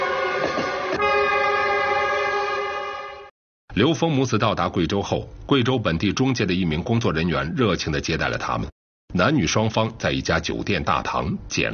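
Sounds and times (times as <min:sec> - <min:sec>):
train horn blast: 0:00.0 - 0:03.3
speech: 0:03.8 - 0:11.7.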